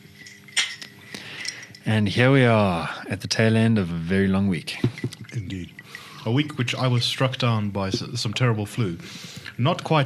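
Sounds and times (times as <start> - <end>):
glasses clinking in a whiskey toast: 0.0 - 2.6, 4.6 - 8.3
speech: 1.8 - 10.0.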